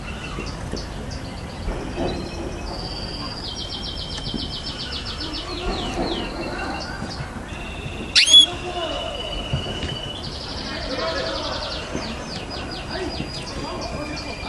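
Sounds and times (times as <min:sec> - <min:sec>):
canary song: 0:00.0 - 0:14.4.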